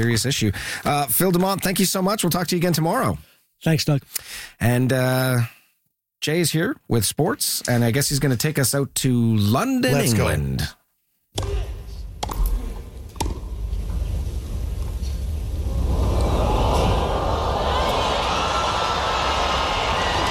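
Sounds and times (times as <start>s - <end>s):
speech: 0.0s - 5.6s, 6.2s - 10.8s
noise: 0.0s - 20.2s
tennis ball strikes from a Wimbledon rally: 11.4s - 12.5s, 13.1s - 13.6s.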